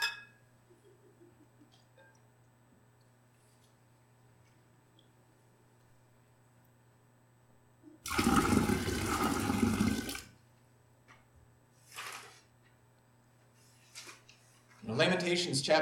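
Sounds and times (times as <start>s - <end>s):
water poured into a small pan over a carpet: 8.1s - 10.3s
soft rustle: 13.4s - 14.9s
speech: 14.9s - 15.8s.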